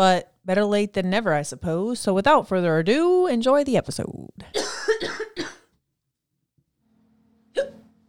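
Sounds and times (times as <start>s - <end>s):
speech: 0.0s - 5.2s
person coughing: 4.5s - 5.8s, 7.5s - 7.9s.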